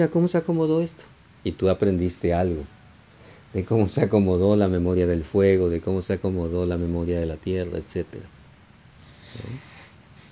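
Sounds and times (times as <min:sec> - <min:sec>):
speech: 0:00.0 - 0:02.8, 0:03.5 - 0:08.4, 0:09.3 - 0:09.7
quiet hiss of room noise: 0:00.0 - 0:10.2
deliberate breath drawn bottom to top in a breathing exercise: 0:09.0 - 0:10.2.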